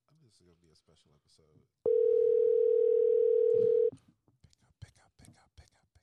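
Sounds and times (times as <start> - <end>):
speech: 0.3 - 4.1
telephone ringing tone while placing a call: 1.9 - 3.9.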